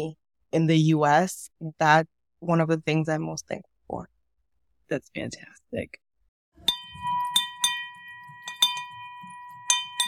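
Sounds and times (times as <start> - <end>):
speech: 0.0 - 4.1, 4.9 - 6.0
bright celebration handbell ringing: 6.6 - 10.0.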